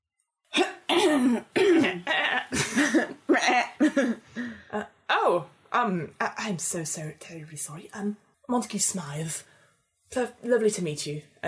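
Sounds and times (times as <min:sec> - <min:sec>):
speech: 0:00.5 - 0:03.1, 0:04.0 - 0:09.5, 0:10.1 - 0:11.4
person clearing throat theatrically: 0:00.5 - 0:04.2.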